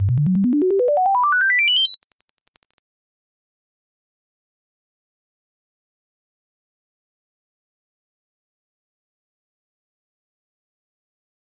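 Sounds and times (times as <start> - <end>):
rising sine tones: 0.0 - 2.7.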